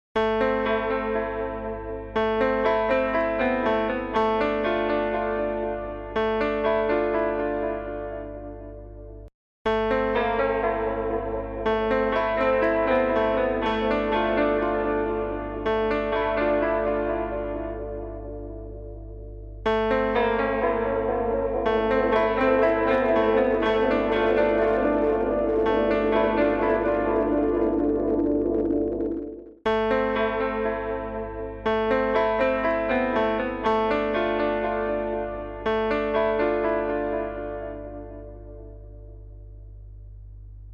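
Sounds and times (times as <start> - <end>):
piano with tape echo: 0.2 - 39.9.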